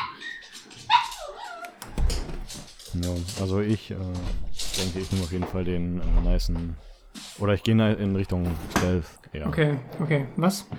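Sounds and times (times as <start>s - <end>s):
dog whimpering while being let out of a room: 0.0s - 2.0s
speech: 3.0s - 10.7s.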